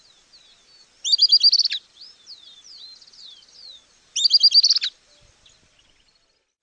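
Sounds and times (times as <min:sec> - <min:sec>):
Camptostoma obsoletum obsoletum faint thin whistled calls: 0:00.0 - 0:06.6
Camptostoma obsoletum obsoletum high twittering notes: 0:01.0 - 0:01.8, 0:04.2 - 0:04.9.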